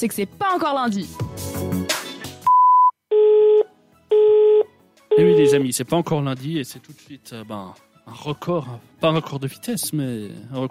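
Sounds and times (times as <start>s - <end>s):
speech: 0.0s - 2.0s, 5.2s - 10.6s
voicemail beep tone: 2.5s - 5.6s.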